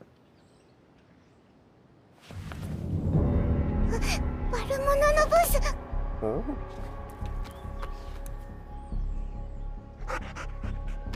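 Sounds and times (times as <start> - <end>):
steady tonal background: 2.6 - 11.1
speech: 5.0 - 7.0
dog panting: 9.9 - 11.1.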